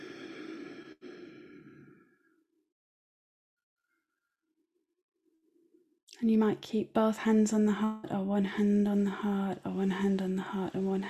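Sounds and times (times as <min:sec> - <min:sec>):
deep breath exhale in a guided heart-focused breathing exercise: 0:00.0 - 0:02.2
speech: 0:06.2 - 0:11.0.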